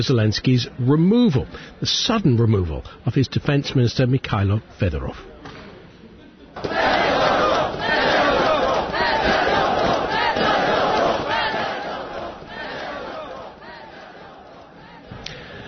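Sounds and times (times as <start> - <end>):
speech: 0.0 - 5.3
street protesters in Ukraine chanting against the president's removal of his defence minister: 6.6 - 15.2.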